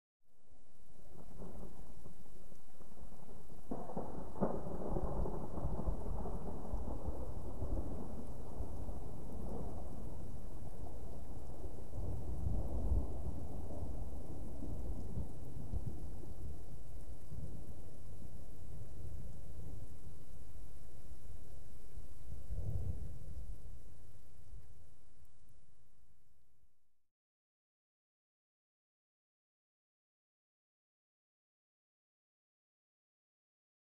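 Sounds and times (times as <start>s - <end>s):
distant gentle thunder: 0.5s - 26.0s.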